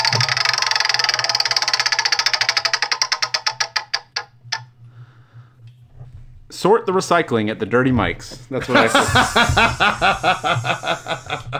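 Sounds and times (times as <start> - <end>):
prize wheel spinning and clicking: 0.0 - 4.6
speech: 6.6 - 11.5
laughter: 8.5 - 11.5.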